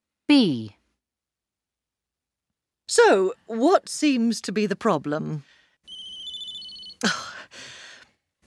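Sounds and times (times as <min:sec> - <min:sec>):
speech: 0:00.3 - 0:00.8, 0:03.0 - 0:05.6, 0:07.0 - 0:07.2
mobile phone ringing with a high electronic tone: 0:05.9 - 0:07.0
sharp breathy gasp: 0:07.1 - 0:08.2.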